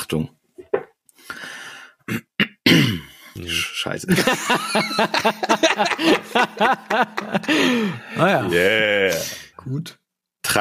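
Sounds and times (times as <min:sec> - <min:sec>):
speech: 0:00.1 - 0:00.4, 0:02.1 - 0:10.5
person clearing throat: 0:02.1 - 0:03.2
laughter: 0:04.1 - 0:09.3.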